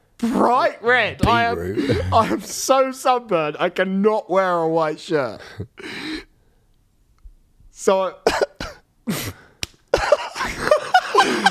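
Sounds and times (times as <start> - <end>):
speech: 0.2 - 6.1, 7.8 - 8.5
man slapping his own face while holding a mic: 9.6 - 10.0
bursts of laughter: 9.9 - 11.5.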